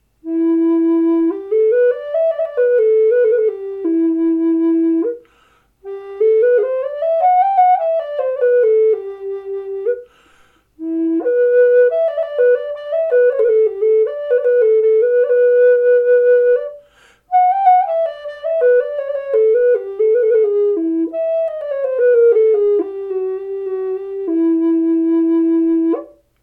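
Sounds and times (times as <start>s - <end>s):
Native style flute of black limba wood: 0.2s - 26.4s.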